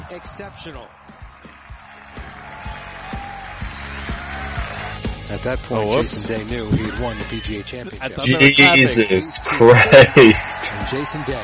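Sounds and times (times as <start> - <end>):
crowd clapping after winning putt: 0.0 - 5.3, 9.4 - 11.4
speech: 0.1 - 1.0, 5.3 - 11.4
laughter: 8.2 - 11.0.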